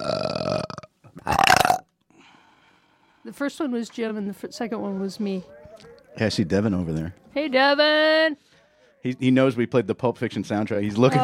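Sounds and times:
loud rumbling burps: 0.0 - 2.0
speech: 3.3 - 5.6, 6.2 - 11.2.

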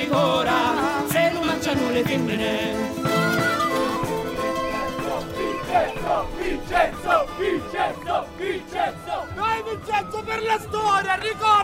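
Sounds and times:
cycling fans chanting at the start of a Giro d'Italia stage in Cefalù: 0.0 - 9.4
crowd of cycling fans shouting rhythmically: 3.7 - 9.4
speech: 5.8 - 11.6.

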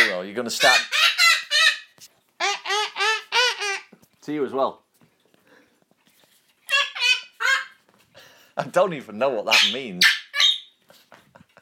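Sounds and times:
pet parrot giving loud honking calls: 0.0 - 3.9, 6.7 - 7.8, 9.5 - 10.7
speech: 0.4 - 1.1, 4.2 - 4.8, 8.6 - 10.2.

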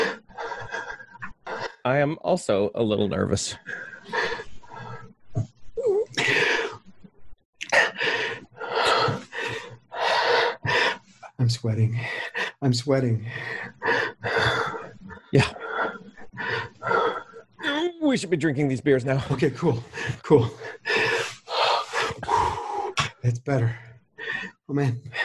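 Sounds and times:
heavy breathing and gasping: 0.0 - 1.8, 3.6 - 6.9, 7.6 - 11.4, 13.2 - 17.9, 19.2 - 25.2
speech: 1.8 - 4.3, 11.6 - 13.8, 15.3 - 15.6, 18.1 - 20.8, 23.4 - 23.9, 24.7 - 25.2.

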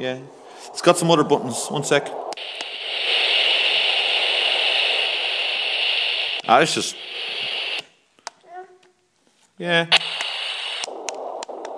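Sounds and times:
speech: 0.0 - 2.6, 6.5 - 7.0, 9.6 - 10.1
burst of hiss: 0.4 - 7.9, 9.9 - 11.7
radio interference static from a sound machine: 0.6 - 7.8, 9.9 - 11.7.

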